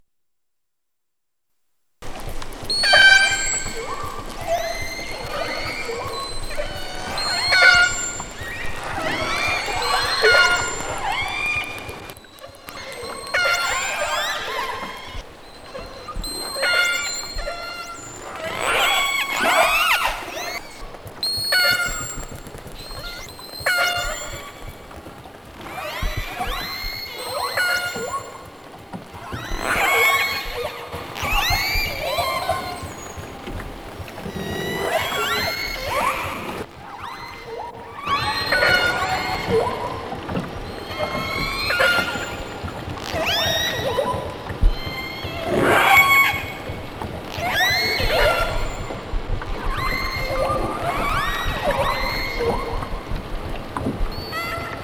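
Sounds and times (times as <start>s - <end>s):
Southern resident killer whales: 2.1s - 54.8s.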